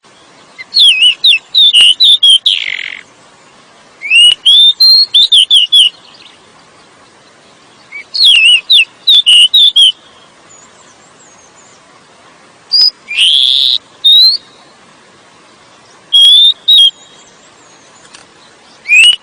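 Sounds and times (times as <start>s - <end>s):
Oriental magpie-robin whistled song of rapid twisting notes: 0.1s - 3.0s, 4.0s - 6.4s, 7.8s - 11.8s, 12.7s - 14.7s, 15.8s - 19.2s.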